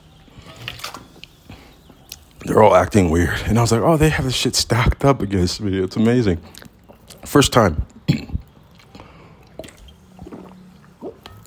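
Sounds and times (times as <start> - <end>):
speech: 2.4 - 6.6, 7.3 - 8.3
person drinking water in gulps: 7.8 - 11.4.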